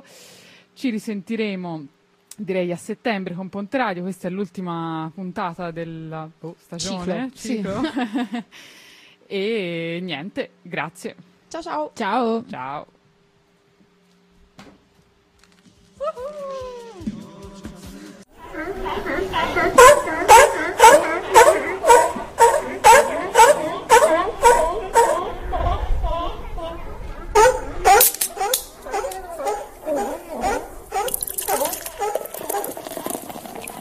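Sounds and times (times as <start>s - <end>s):
speech: 0.8s - 13.0s
crowd of seals barking and moaning: 18.4s - 33.7s.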